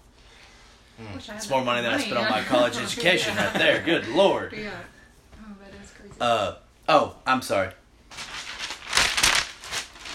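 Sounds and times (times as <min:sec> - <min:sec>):
speech: 0:01.0 - 0:05.0, 0:06.0 - 0:07.8
laughter: 0:02.0 - 0:04.5
blank sheet of paper rustling and crinkling: 0:08.1 - 0:10.1.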